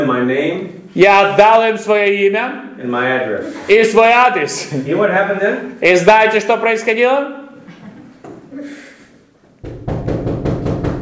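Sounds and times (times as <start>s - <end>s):
speech: 0.1s - 7.4s
fist knocking on a door: 9.6s - 11.0s.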